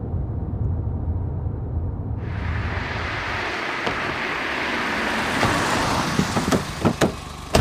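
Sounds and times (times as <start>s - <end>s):
car engine rumbling while parking: 0.0s - 7.5s
sharp clicks and knocks: 6.2s - 7.5s.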